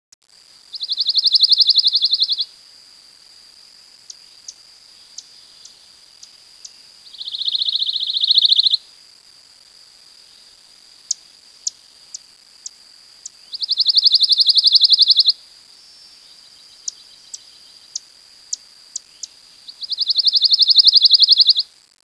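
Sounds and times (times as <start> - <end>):
pine warbler songs: 0.8 - 2.5, 4.1 - 8.8, 13.2 - 21.6.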